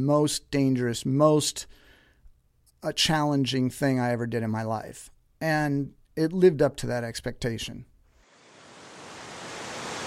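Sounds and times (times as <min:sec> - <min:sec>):
speech: 0:00.0 - 0:01.8, 0:02.8 - 0:07.9
roar of rushing water from a waterfall: 0:08.2 - 0:10.0.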